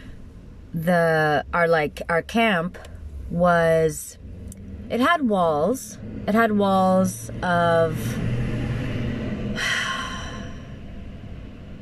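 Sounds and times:
speech: 0:00.7 - 0:08.4
van passing by in traffic: 0:03.0 - 0:11.7.

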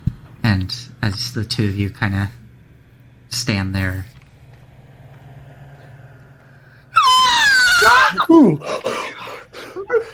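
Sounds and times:
speech: 0:00.6 - 0:02.4, 0:03.3 - 0:04.2, 0:08.3 - 0:09.0
voice imitating a long piercing shriek: 0:06.9 - 0:08.5.

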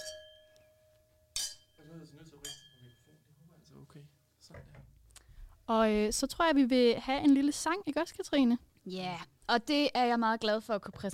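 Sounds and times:
glasses clinking in a toast: 0:00.0 - 0:03.3
speech: 0:02.0 - 0:05.0, 0:05.7 - 0:11.1.

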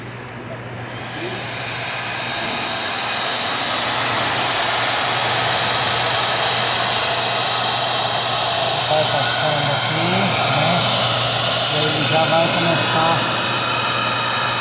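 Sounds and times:
hair dryer blowing with low motor hum: 0:00.8 - 0:14.5.

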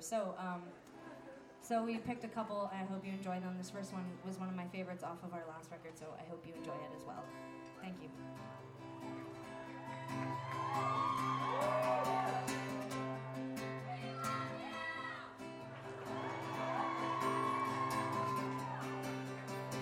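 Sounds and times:
speech: 0:00.0 - 0:01.0, 0:01.6 - 0:09.2, 0:10.1 - 0:11.4
concert audience yelling and whooping: 0:09.2 - 0:13.0, 0:13.9 - 0:19.7.

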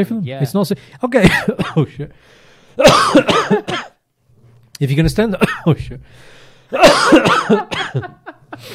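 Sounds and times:
speech: 0:00.0 - 0:03.9, 0:04.8 - 0:08.7
man coughing in a harsh wheezy fit: 0:01.2 - 0:02.0, 0:02.8 - 0:04.0, 0:05.4 - 0:05.8, 0:06.7 - 0:08.7.

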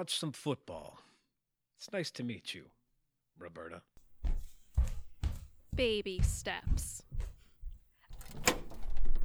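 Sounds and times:
speech: 0:00.0 - 0:01.1, 0:01.8 - 0:02.8, 0:03.4 - 0:04.0, 0:05.8 - 0:07.3
door pulled open with a click and thud: 0:08.1 - 0:09.0.

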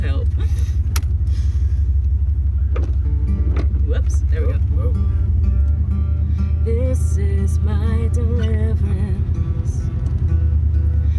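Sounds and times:
car engine drone inside a moving car: 0:00.0 - 0:11.1
road rumble inside a moving car: 0:00.0 - 0:11.1
sharp clicks and bumps: 0:02.7 - 0:04.5.

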